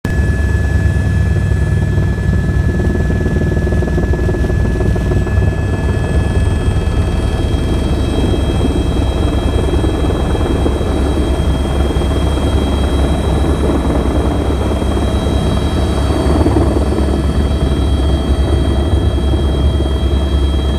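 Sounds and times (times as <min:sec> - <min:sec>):
helicopter interior noise: 0:00.0 - 0:20.7.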